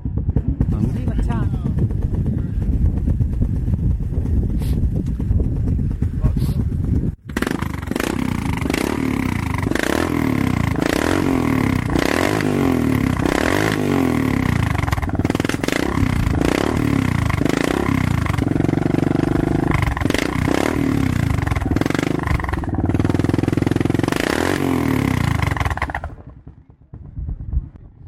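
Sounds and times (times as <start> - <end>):
chromed single-cylinder Suzuki DR Big 750 motorcycle engine idling and revving: 0.0 - 27.8.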